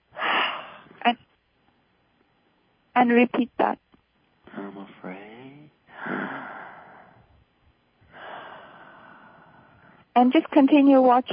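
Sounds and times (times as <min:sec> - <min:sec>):
long airy breaths: 0:00.2 - 0:01.0, 0:05.9 - 0:07.4, 0:08.0 - 0:10.1
speech: 0:01.0 - 0:01.3, 0:03.0 - 0:03.8, 0:10.2 - 0:11.3
person exhaling during a breathing exercise: 0:05.9 - 0:07.3, 0:08.1 - 0:10.0.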